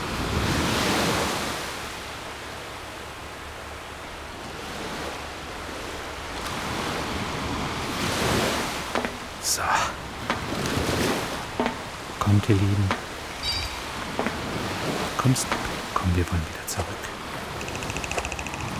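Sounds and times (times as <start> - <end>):
ocean waves breaking on the shore: 0.0 - 18.7
speech: 12.3 - 13.1, 15.2 - 17.2.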